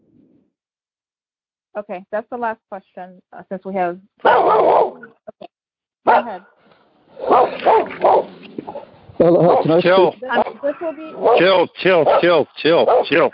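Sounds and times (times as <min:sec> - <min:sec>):
speech: 0:01.8 - 0:05.4, 0:06.2 - 0:06.6, 0:09.2 - 0:13.3
dog barking and yelping: 0:04.2 - 0:05.2, 0:06.1 - 0:06.5, 0:07.2 - 0:13.3.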